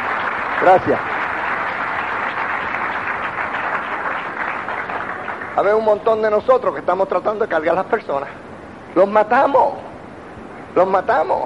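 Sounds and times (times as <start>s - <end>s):
crowd applause: 0.0s - 6.4s
speech: 0.7s - 1.1s, 5.6s - 8.4s, 9.0s - 9.9s, 10.8s - 11.4s.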